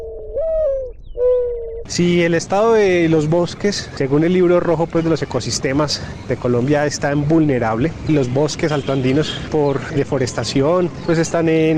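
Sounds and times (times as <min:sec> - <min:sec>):
ground dove cooing: 0:00.0 - 0:01.9
speech: 0:01.9 - 0:11.7.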